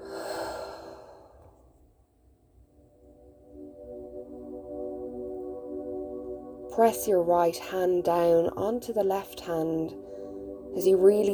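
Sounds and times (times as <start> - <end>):
deep breathing during a guided exercise: 0.0 - 1.7, 10.0 - 10.7
sustained musical drone: 2.9 - 11.3
speech: 6.8 - 10.0, 10.8 - 11.3.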